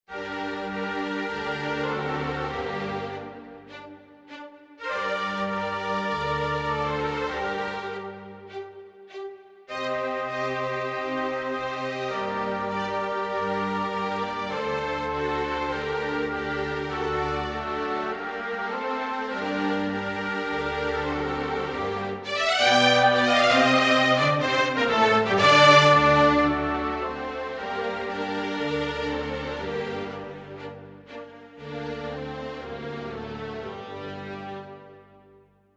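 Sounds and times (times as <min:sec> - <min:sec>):
MIDI version of ballet-pantomime music: 0:00.2 - 0:35.2.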